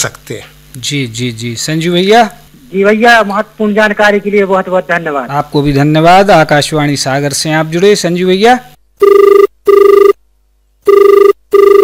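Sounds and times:
speech: 0.0 - 9.3
telephone ringing for an incoming call with double-burst trills: 9.0 - 10.2, 10.9 - 11.8.

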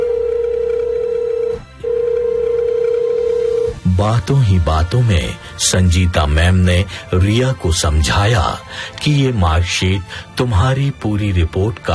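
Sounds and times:
telephone ringing as a steady electronic tone: 0.0 - 3.8
speech: 4.0 - 11.9.

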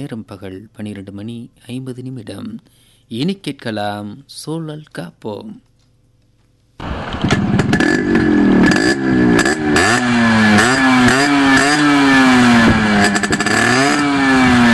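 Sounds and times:
speech: 0.0 - 5.7
motorbike engine revved hard: 6.8 - 14.7.

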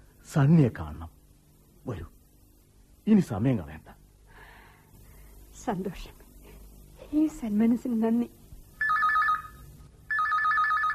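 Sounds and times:
speech: 0.3 - 1.2, 1.8 - 2.2, 3.1 - 4.0, 5.6 - 6.2, 7.1 - 8.4
telephone ringing with an incoming call to a home: 8.8 - 10.9.

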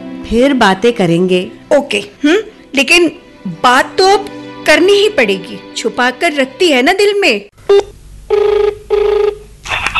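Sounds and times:
speech: 0.3 - 9.4
telephone ringing: 7.7 - 9.4.

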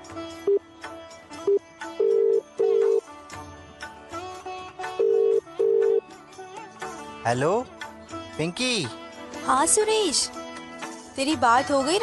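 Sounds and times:
soft music: 0.0 - 12.0
outgoing call ringback tone: 1.5 - 3.0, 5.0 - 6.0
speech: 7.3 - 7.8, 8.4 - 10.4, 11.2 - 12.0.

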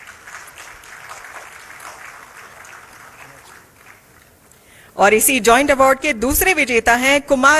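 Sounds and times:
applause from a sizable audience: 0.0 - 4.5
speech: 5.0 - 7.5.

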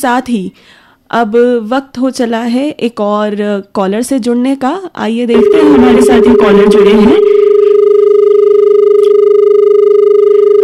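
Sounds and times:
speech: 0.0 - 7.4
telephone dial tone after a dropped call: 5.4 - 10.6.

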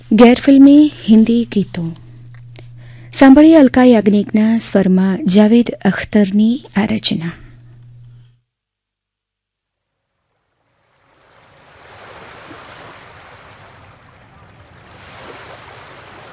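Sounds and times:
speech: 0.1 - 2.0, 3.1 - 7.4
foam-crested sea waves breaking against a rocky shore: 11.0 - 16.3.

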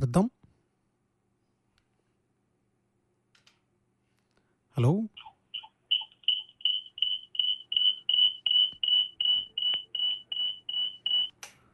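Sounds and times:
speech: 0.0 - 0.4, 4.8 - 5.2
phone line tone after a call is cut off: 6.0 - 11.3.

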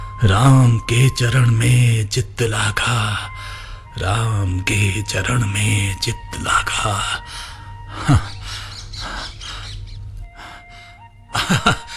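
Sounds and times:
speech: 0.2 - 8.3, 11.5 - 11.8
parrot chirping: 8.4 - 10.1.

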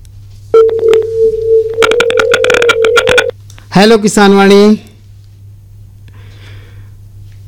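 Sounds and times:
steady electronic tone of an incoming phone call: 0.6 - 3.3
speech: 3.8 - 4.9.

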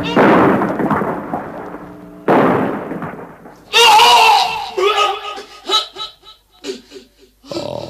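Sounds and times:
bomb exploding on an ammunition store: 0.0 - 4.7
soldiers shouting during a battle: 3.7 - 5.6
laughter: 4.7 - 7.8.

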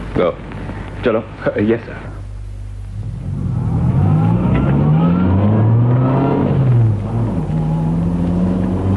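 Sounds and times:
speech: 0.2 - 2.2
car engine revving and accelerating from a traffic light: 2.9 - 8.9.

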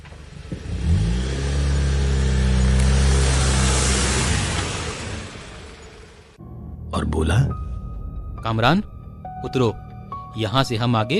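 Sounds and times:
car engine humming while driving and stopping: 0.0 - 8.4
speech: 8.4 - 11.1.

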